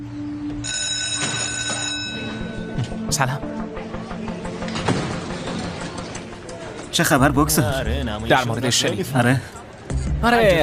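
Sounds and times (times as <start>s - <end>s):
telephone ringing tone on the line while a call is placed: 0.6s - 2.7s
speech: 3.1s - 3.6s, 7.0s - 9.6s, 10.2s - 10.6s.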